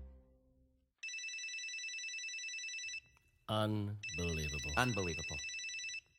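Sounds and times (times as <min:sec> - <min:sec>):
cell phone ringing with a bright electronic trill: 0:01.0 - 0:03.2, 0:04.0 - 0:06.1
speech: 0:03.5 - 0:05.6.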